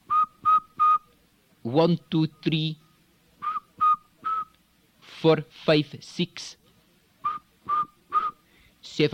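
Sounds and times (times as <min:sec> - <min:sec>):
whistling made with the lips: 0:00.0 - 0:01.1, 0:03.4 - 0:04.6, 0:07.2 - 0:08.4
speech: 0:01.7 - 0:02.8, 0:05.2 - 0:06.6, 0:08.8 - 0:09.1.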